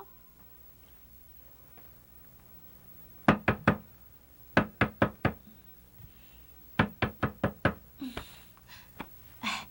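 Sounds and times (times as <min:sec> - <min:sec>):
loud knocking on a door in the middle of the night: 0:03.3 - 0:03.9, 0:04.5 - 0:05.4, 0:06.8 - 0:07.9
faint breathy sounds: 0:05.4 - 0:06.7, 0:08.0 - 0:09.6.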